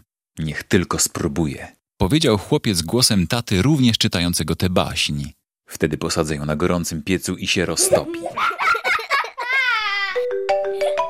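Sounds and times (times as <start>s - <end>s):
speech: 0.4s - 8.8s
laughter: 7.8s - 10.2s
phone ringtone melody of sustained electronic tones: 10.2s - 11.0s.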